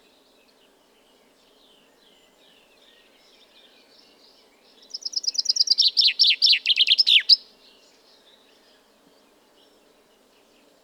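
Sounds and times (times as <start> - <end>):
common chaffinch Fringilla coelebs singing: 4.9 - 7.4.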